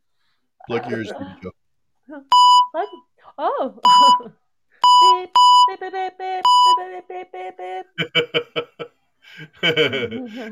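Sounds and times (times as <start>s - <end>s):
speech: 0.7s - 4.4s, 5.0s - 10.4s
loud steady censor-style beeps: 2.3s - 3.0s, 3.8s - 5.8s, 6.4s - 6.9s
burst of laughter: 8.0s - 10.4s
person chuckling: 8.0s - 10.4s.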